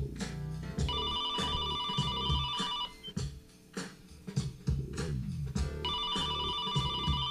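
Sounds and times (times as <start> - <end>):
busy rhythmic noise: 0.0 - 7.2
telephone ringing on the caller's end of the line: 0.9 - 3.1, 5.9 - 7.2.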